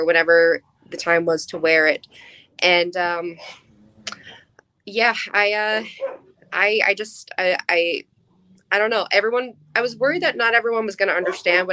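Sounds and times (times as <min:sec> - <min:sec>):
speech: 0:00.0 - 0:03.6, 0:04.8 - 0:08.1, 0:08.7 - 0:11.7
dogs barking excitedly: 0:05.8 - 0:06.5, 0:11.2 - 0:11.6.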